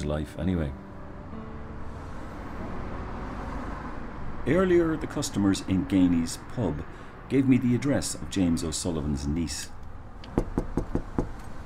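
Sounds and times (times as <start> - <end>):
speech: 0.0 - 1.4, 4.4 - 9.8
firm knocks on a front door: 10.3 - 11.4.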